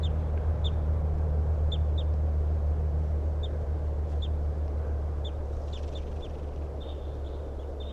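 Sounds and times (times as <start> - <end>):
male bird singing its song near a road: 0.0 - 0.9, 1.6 - 2.1, 3.4 - 4.4, 5.2 - 7.9
constant low rumble of road traffic: 0.0 - 7.9.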